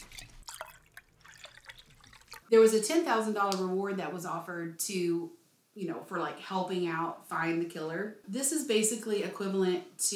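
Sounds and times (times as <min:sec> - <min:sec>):
splashy drips of tea: 0:00.0 - 0:02.5
tea pouring into a cup: 0:00.0 - 0:02.5
speech: 0:02.5 - 0:10.1.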